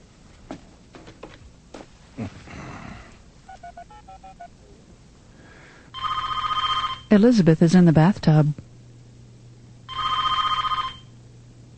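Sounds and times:
telephone ringing in trilling electronic bursts: 3.5s - 4.6s, 5.9s - 7.2s, 9.9s - 11.1s
speech: 7.1s - 8.7s.

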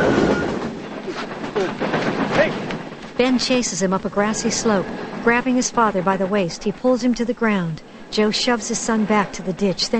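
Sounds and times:
silver freight car speeding past on the tracks: 0.0s - 9.9s
speech: 3.2s - 9.9s.

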